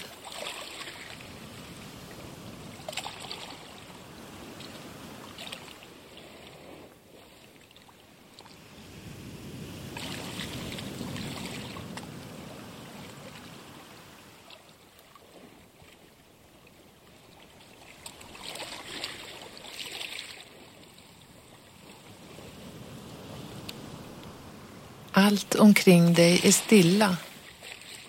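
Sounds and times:
gentle sea waves lapping against a beach shore: 0.0s - 28.0s
speech: 25.2s - 27.3s.

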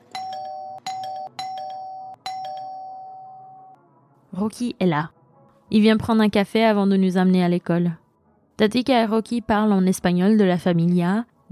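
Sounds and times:
house doorbell chime ringing in the morning: 0.0s - 3.8s
speech: 4.4s - 8.0s, 8.6s - 11.4s.

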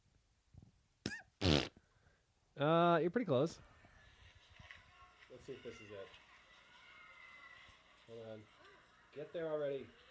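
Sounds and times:
person imitating a goat sneezing: 1.0s - 1.8s
speech: 2.6s - 3.7s, 5.4s - 6.2s, 8.1s - 8.6s, 9.2s - 10.0s.

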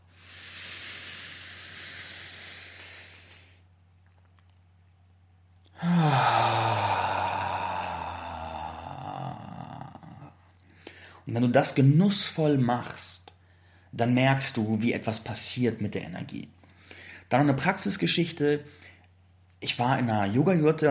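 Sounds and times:
person breathing slowly for an energy practice: 0.0s - 3.7s, 5.7s - 11.2s, 13.4s - 13.9s, 16.6s - 17.3s
speech: 11.3s - 13.1s, 14.0s - 16.6s, 17.3s - 18.8s, 19.6s - 20.9s.

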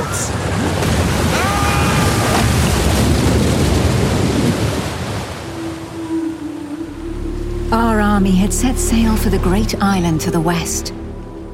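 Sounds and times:
strong storm wind roaring at sea: 0.0s - 7.6s
waves crashing in a storm at sea: 0.0s - 7.6s
speech: 8.2s - 11.0s.

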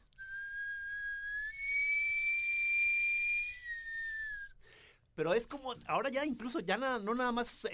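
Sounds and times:
person whistling a long tone imitating a sweet-potato cart steam whistle: 0.0s - 4.6s
speech: 5.2s - 7.7s.

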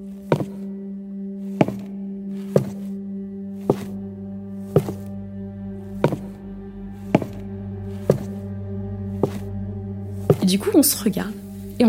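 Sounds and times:
constant low hum: 0.0s - 11.8s
footsteps on the floor above in an old house: 0.3s - 0.7s, 1.6s - 2.9s, 3.6s - 4.0s, 4.7s - 5.1s, 6.0s - 6.4s, 7.1s - 8.5s, 9.2s - 9.5s
speech: 10.5s - 11.8s.

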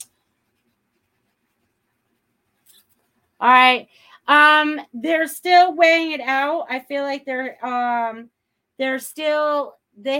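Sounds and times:
pen or pencil writing a name by hand: 0.0s - 2.4s
speech: 3.4s - 10.1s.

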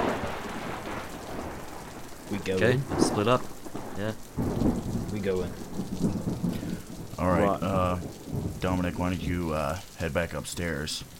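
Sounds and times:
low rolling thunder: 0.0s - 11.1s
steady dense rain: 0.0s - 11.1s
speech: 2.3s - 6.6s, 7.2s - 11.1s.

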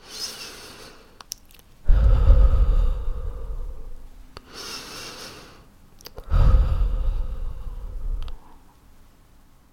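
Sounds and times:
person taking slow deep breaths in and out to calm down: 0.0s - 1.2s, 1.8s - 8.8s.

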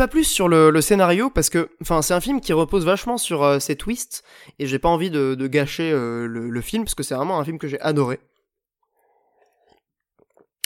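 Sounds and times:
speech: 0.0s - 8.3s
person taking a small sip from a drink: 8.8s - 10.6s
brief slurp: 9.2s - 10.6s.

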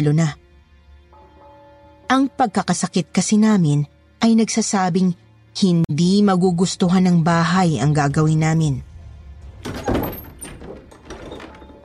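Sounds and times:
speech: 0.0s - 0.4s, 2.1s - 8.9s
door being pulled open: 9.4s - 11.8s
door hinges creaking: 9.4s - 11.8s.

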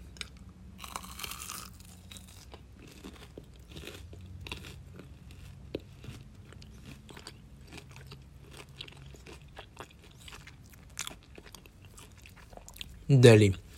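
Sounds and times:
crunchy chewing of a small cheese skewer snack: 0.1s - 13.0s
speech: 13.1s - 13.6s.

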